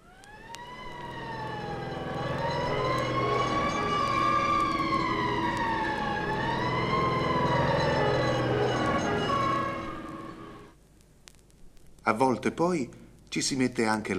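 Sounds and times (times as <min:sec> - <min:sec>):
fire engine siren wailing: 0:00.0 - 0:10.8
speech: 0:12.1 - 0:14.1.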